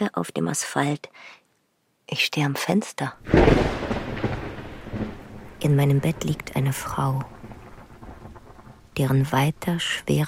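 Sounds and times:
speech: 0.0s - 1.4s, 2.1s - 3.8s, 5.6s - 7.3s, 9.0s - 10.2s
faint rain-like hiss: 0.2s - 10.2s
thunder crack and rumble during a thunderstorm: 3.2s - 10.2s.

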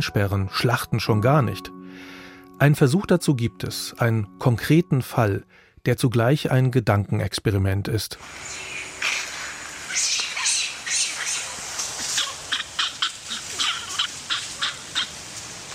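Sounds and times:
speech: 0.0s - 9.1s
troop of crested macaques chattering on Sulawesi: 8.2s - 15.2s.

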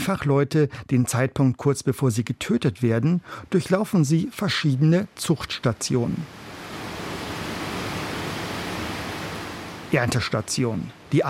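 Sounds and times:
speech: 0.0s - 6.5s, 9.9s - 11.2s
water rushing in shrimp farm tanks: 5.6s - 11.2s.

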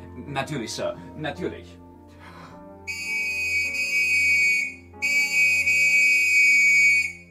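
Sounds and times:
speech: 0.2s - 1.8s
police constable's whistle blown loudly: 2.9s - 7.3s.

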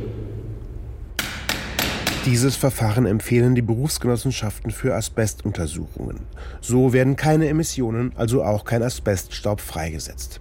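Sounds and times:
quiet low hum: 0.0s - 9.4s
hammer striking a chisel breaking through a wall layer for asbestos sampling: 1.2s - 2.6s
speech: 2.2s - 10.3s.

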